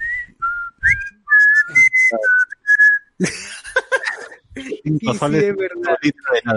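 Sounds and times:
person whistling a short bright commercial jingle: 0.0 - 3.0
speech: 3.2 - 3.4, 4.9 - 6.5
laughter: 3.2 - 6.5.

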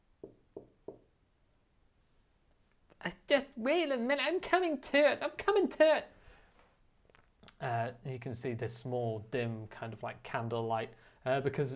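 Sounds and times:
firm knocking on a door: 0.2 - 1.1
speech: 3.0 - 6.1, 7.6 - 11.7.

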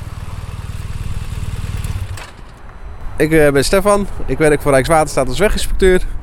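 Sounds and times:
BMW 1200 motorcycle engine rumbling: 0.0 - 3.2
speech: 3.2 - 6.2.

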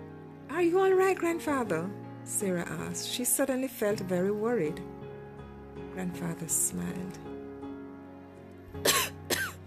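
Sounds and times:
speech: 0.6 - 5.0, 6.0 - 7.3
sharp harsh coughs: 8.8 - 9.6.

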